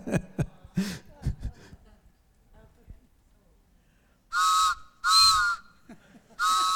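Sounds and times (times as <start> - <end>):
loud breathy train whistle toots with a chord-like tone: 4.3 - 5.7, 6.4 - 6.7.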